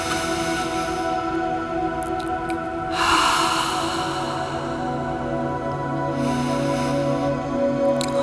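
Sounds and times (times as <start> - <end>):
deep breath in and out during a guided breathing exercise: 0.0 - 1.8, 2.9 - 7.6
steady quiet musical drone: 0.0 - 8.2.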